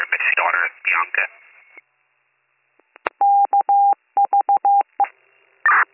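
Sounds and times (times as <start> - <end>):
speech: 0.3 - 1.4
telephone keypad dialing tones: 3.2 - 5.0.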